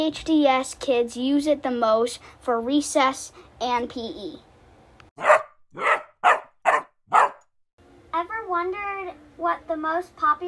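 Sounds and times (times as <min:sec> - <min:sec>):
speech: 0:00.0 - 0:04.5, 0:05.2 - 0:05.9, 0:08.6 - 0:10.4
dog barking in a public park: 0:05.2 - 0:07.5.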